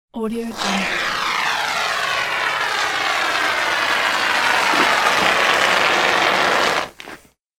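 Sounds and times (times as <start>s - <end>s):
foam glue being applied: 0.5s - 7.3s.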